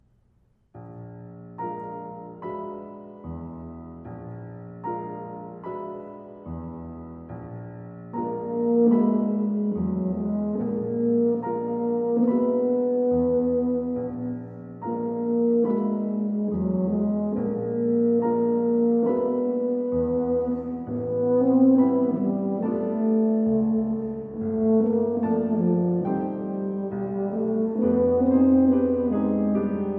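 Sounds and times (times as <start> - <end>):
horn, tuba and piano piece: 0.9 - 29.9.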